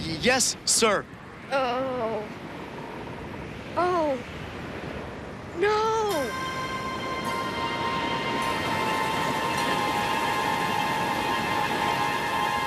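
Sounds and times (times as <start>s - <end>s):
rushing wind aboard a sailing ship: 0.0s - 12.6s
stormy sea roaring in foul weather: 0.0s - 12.6s
waves of a stormy sea: 0.0s - 12.6s
speech: 0.2s - 2.4s, 3.8s - 4.4s, 5.6s - 6.5s
sustained horn-like tone: 6.1s - 12.6s.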